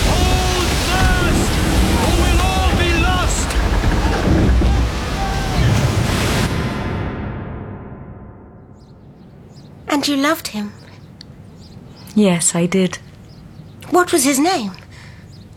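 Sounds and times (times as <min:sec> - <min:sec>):
high cries or creaks: 0:00.0 - 0:06.0
stormy sea waves crashing around a boat: 0:00.0 - 0:07.8
gusting wind: 0:00.0 - 0:15.5
speech: 0:10.0 - 0:10.8, 0:12.2 - 0:13.1, 0:13.9 - 0:14.8.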